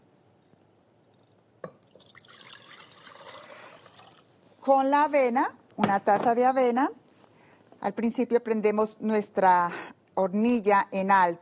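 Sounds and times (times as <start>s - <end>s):
water pouring into a pot on a stove: 1.8s - 4.3s
speech: 4.7s - 7.0s, 7.8s - 11.4s.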